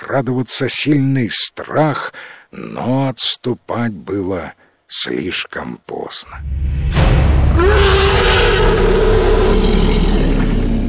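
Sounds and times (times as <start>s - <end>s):
speech: 0.1s - 10.1s
heavy continuous low ground rumble: 6.3s - 10.8s
distant guttural dragon roar: 6.4s - 10.8s.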